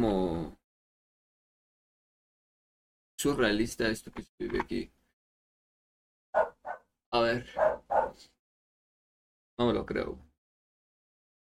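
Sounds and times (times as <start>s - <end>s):
speech: 0.0s - 0.6s, 3.2s - 5.0s, 7.1s - 8.4s, 9.6s - 10.3s
dog yipping: 6.4s - 6.8s, 7.6s - 8.2s
dog barking: 6.4s - 6.9s, 7.5s - 8.3s.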